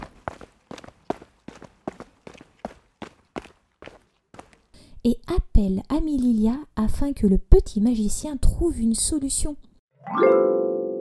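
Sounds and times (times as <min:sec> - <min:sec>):
footsteps of someone running to a bedroom: 0:00.0 - 0:04.8
speech: 0:05.0 - 0:10.6.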